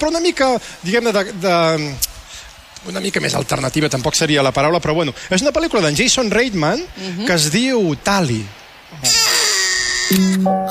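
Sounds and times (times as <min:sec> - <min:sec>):
speech: 0:00.0 - 0:02.1, 0:02.8 - 0:09.2, 0:10.1 - 0:10.6
baby crying at four in the morning: 0:09.0 - 0:10.6.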